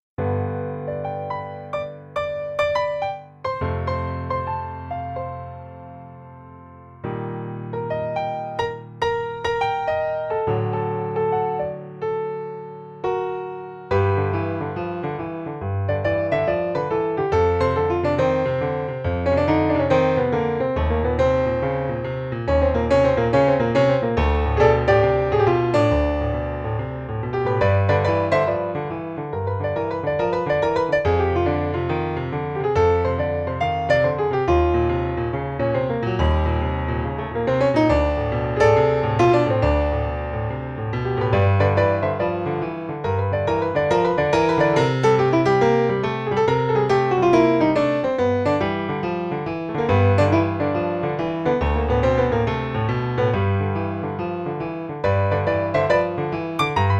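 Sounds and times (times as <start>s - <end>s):
eight bar boogie on solo piano: 0.2s - 56.9s.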